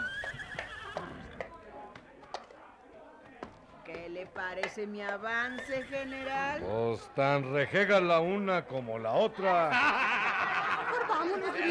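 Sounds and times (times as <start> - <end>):
mare neighing: 0.0 - 1.3, 5.4 - 6.7
speech: 4.2 - 10.2, 11.2 - 11.6
laughter: 9.2 - 11.6.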